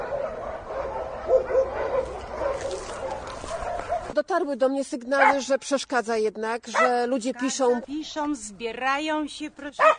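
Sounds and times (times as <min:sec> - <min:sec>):
dogs barking and yipping at an animal shelter: 0:00.0 - 0:04.2, 0:06.7 - 0:07.0, 0:09.8 - 0:09.9
speech: 0:04.2 - 0:09.9.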